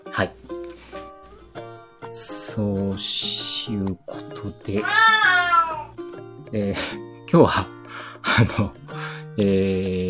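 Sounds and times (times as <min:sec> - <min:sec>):
speech: 0:00.2 - 0:00.4, 0:02.1 - 0:05.3, 0:06.5 - 0:08.8, 0:09.4 - 0:10.0
cat meowing: 0:04.8 - 0:06.0.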